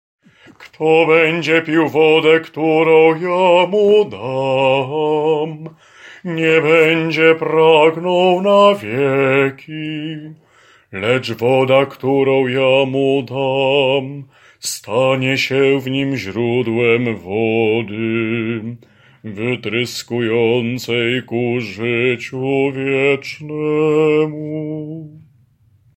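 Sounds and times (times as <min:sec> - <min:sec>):
bass voice part singing: 0:00.6 - 0:25.3.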